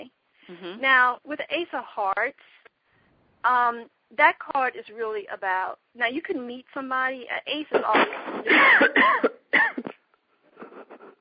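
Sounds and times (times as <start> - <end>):
speech: 0.5 - 2.6, 3.4 - 9.8
person coughing: 7.8 - 10.0.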